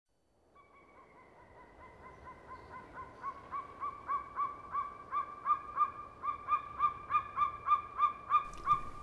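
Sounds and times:
golden eagle yelping: 1.8s - 9.0s.

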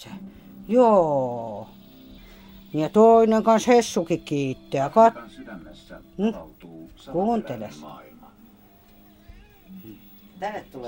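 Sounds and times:
speech: 0.0s - 1.5s, 2.7s - 8.1s, 9.8s - 10.8s
low steady hum: 0.0s - 10.8s
cat meowing: 9.0s - 10.0s.

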